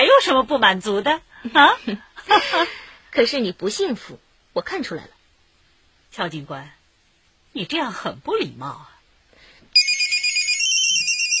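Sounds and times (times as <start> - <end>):
speech: 0.2 - 5.2, 6.1 - 6.8, 7.6 - 8.9
high warbling electronic phone ringtone: 9.8 - 11.3.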